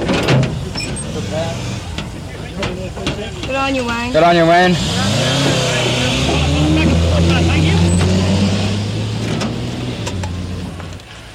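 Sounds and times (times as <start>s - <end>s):
indistinct voices: 0.0s - 11.1s
heavy truck engine rumbling as the vehicle rolls in: 0.0s - 11.3s
speech: 2.9s - 5.7s.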